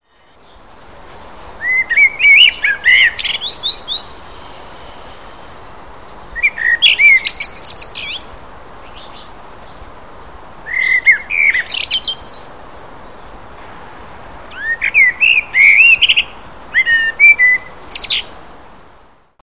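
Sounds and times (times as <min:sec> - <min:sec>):
blackbird: 0:01.6 - 0:05.4, 0:06.3 - 0:09.3, 0:10.7 - 0:12.8, 0:14.5 - 0:18.3.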